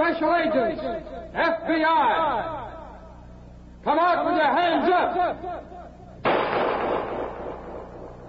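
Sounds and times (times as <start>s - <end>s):
speech: 0.2s - 2.6s, 3.8s - 5.8s
gunshot fired at FBI agents during a nighttime standoff: 6.2s - 8.2s.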